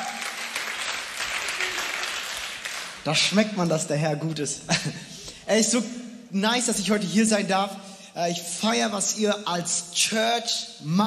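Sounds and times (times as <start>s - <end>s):
audience applause at a youth church gathering in Wuppertal: 0.0s - 3.0s
speech: 3.0s - 11.0s.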